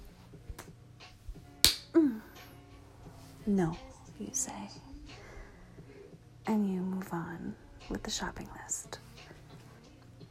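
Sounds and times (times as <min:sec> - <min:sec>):
sharp playful slap on the face: 0:01.6 - 0:01.9
speech: 0:03.5 - 0:04.9, 0:06.4 - 0:09.0.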